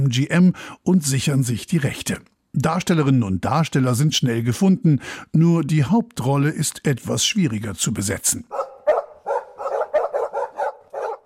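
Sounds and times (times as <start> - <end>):
speech: 0.0 - 8.7
dog barking: 8.5 - 11.2.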